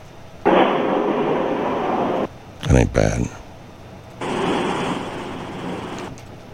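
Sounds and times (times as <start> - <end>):
explosion sound effect: 0.5 - 2.3, 4.2 - 6.1
speech: 2.7 - 3.4.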